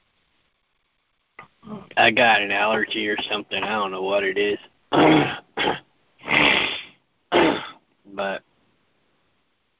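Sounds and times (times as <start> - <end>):
speech: 1.9 - 5.8
person clearing throat: 4.9 - 7.8.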